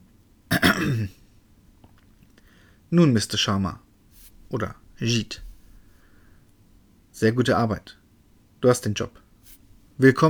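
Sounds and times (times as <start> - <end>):
throat clearing: 0.5 - 1.2
speech: 0.8 - 1.2, 2.9 - 3.8, 4.5 - 5.4, 7.2 - 8.0, 8.6 - 9.2, 10.0 - 10.2.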